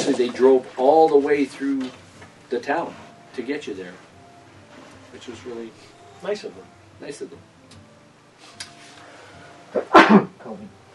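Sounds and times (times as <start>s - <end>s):
speech: 0.1s - 4.1s, 5.1s - 7.5s, 9.7s - 10.8s
intake of breath: 8.8s - 9.6s
exhale: 8.9s - 9.6s
person sneezing: 9.8s - 10.6s.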